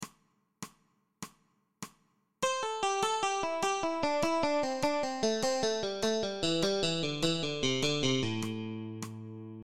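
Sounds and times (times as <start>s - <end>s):
descending eighth-note triplets with release taps: 2.4s - 9.6s.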